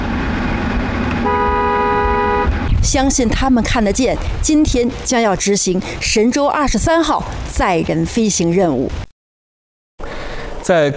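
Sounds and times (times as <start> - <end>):
steady road rumble: 0.0 - 9.1, 10.0 - 10.9
car horns honking in tribute passing a revolutionary martyrs' cemetery: 1.2 - 2.7
speech: 2.9 - 9.0, 10.7 - 10.9.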